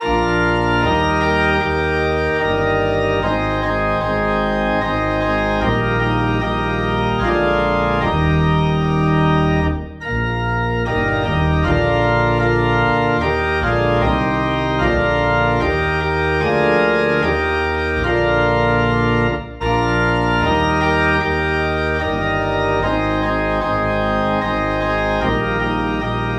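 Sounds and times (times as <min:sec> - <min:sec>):
low organ note in E flat: 0:00.0 - 0:26.3.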